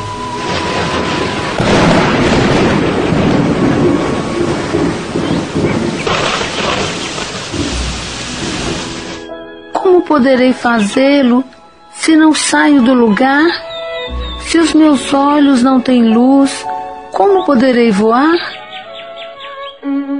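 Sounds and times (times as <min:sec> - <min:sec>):
deep rolls of thunder in a raging storm: 0:00.0 - 0:09.3
steady heavy rain in a thunderstorm: 0:00.0 - 0:09.3
speech: 0:10.2 - 0:13.7, 0:14.4 - 0:18.6.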